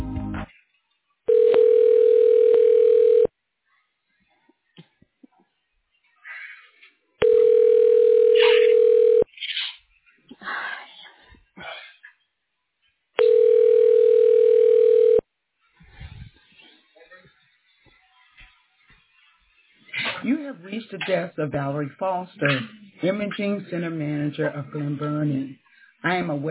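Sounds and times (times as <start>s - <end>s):
telephone ringing tones: 1.3s - 3.3s, 7.2s - 9.3s, 13.2s - 15.3s
tonal line audio of an office phone call being transferred: 1.3s - 3.3s, 7.2s - 9.3s, 13.2s - 15.3s
speech: 21.0s - 26.4s.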